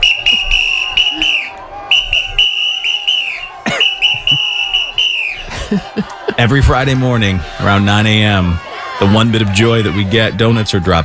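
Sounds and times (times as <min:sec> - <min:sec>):
shrill whistle blasts during protest: 0:00.0 - 0:05.4
laughter: 0:00.1 - 0:01.8, 0:03.1 - 0:10.4
speech: 0:05.7 - 0:11.0.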